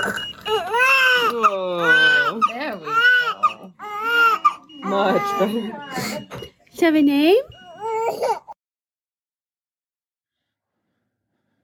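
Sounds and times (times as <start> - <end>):
newborn baby's first cry after delivery: 0.4 - 6.5, 7.5 - 8.6
speech: 5.3 - 7.5.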